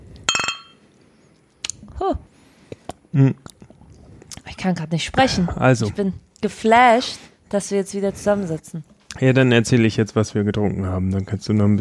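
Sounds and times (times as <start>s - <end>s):
glasses clinking in a toast: 0.3s - 0.8s
speech: 2.0s - 2.3s, 3.1s - 3.5s, 4.6s - 11.8s.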